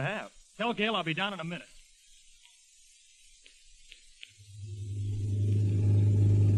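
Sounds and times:
speech: 0:00.0 - 0:01.8
new car engine approaching and idling: 0:04.6 - 0:06.5.

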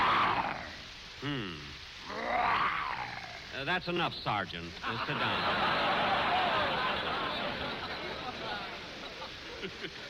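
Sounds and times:
man imitating a lion's roar: 0:00.0 - 0:03.6
speech: 0:01.2 - 0:02.2, 0:03.6 - 0:06.5, 0:09.6 - 0:10.0
laughter: 0:04.8 - 0:10.0.

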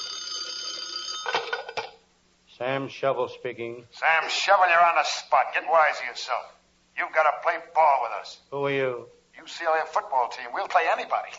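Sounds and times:
telephone ringing with a metallic bell tone: 0:00.0 - 0:02.0
speech: 0:02.6 - 0:11.3.

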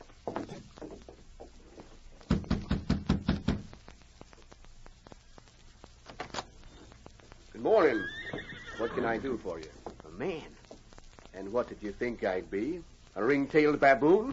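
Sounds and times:
soft shuffling: 0:00.0 - 0:02.4, 0:03.7 - 0:14.3
firm knocking on a door: 0:02.3 - 0:03.7
speech: 0:07.7 - 0:08.1, 0:09.0 - 0:10.6, 0:11.4 - 0:14.3.

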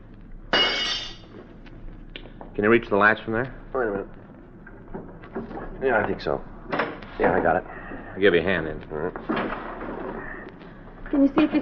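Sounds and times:
glass window pane breaking: 0:00.5 - 0:01.2
speech: 0:02.6 - 0:04.2, 0:05.8 - 0:06.5, 0:07.2 - 0:09.6, 0:11.1 - 0:11.6.

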